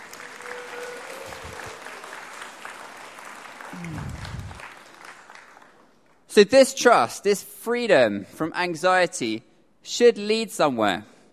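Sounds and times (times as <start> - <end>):
audience clapping in a large room: 0.0 - 6.3
speech: 6.4 - 11.1.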